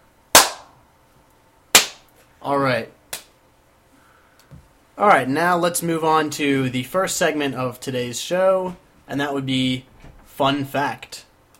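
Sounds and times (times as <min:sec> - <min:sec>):
sharp loud high five hand slaps: 0:00.4 - 0:00.7, 0:01.8 - 0:02.0, 0:03.1 - 0:03.3
speech: 0:02.4 - 0:03.0, 0:05.0 - 0:11.2.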